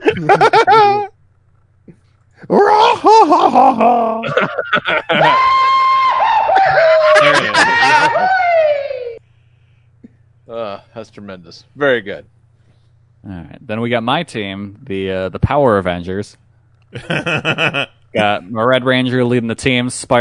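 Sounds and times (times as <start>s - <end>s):
laughter: 0.0s - 1.1s, 2.6s - 5.8s, 6.5s - 8.8s, 17.0s - 17.9s
speech: 0.2s - 0.8s, 3.3s - 5.5s, 11.0s - 12.4s, 13.2s - 20.1s
voice imitating a cartoonish falling yell: 2.5s - 4.2s, 5.1s - 9.2s.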